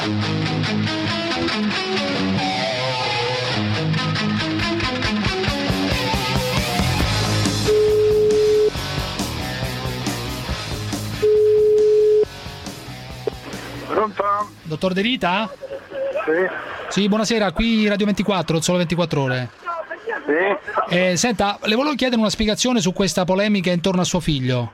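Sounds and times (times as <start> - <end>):
music: 0.0 - 15.9
speech: 0.1 - 1.0, 14.8 - 15.6, 16.3 - 19.6, 20.4 - 24.7
telephone tones while a call is placed: 7.7 - 8.7, 11.2 - 12.3
laughter: 15.2 - 17.2, 19.7 - 21.0.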